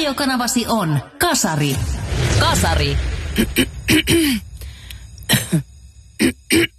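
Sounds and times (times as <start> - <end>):
speech: 0.1 - 4.5, 5.3 - 6.7
hacking coughs: 3.4 - 4.4, 5.3 - 6.7
throat clearing: 5.3 - 6.7.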